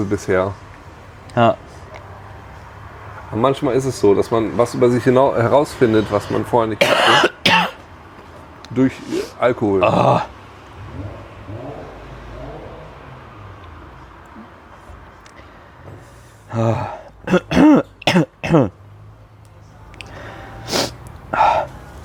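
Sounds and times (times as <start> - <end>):
speech: 0.0 - 0.7, 1.3 - 1.7, 3.3 - 7.6, 8.7 - 10.3, 16.6 - 17.0
coughing fit of harsh rasping coughs: 6.3 - 7.8, 16.5 - 18.8.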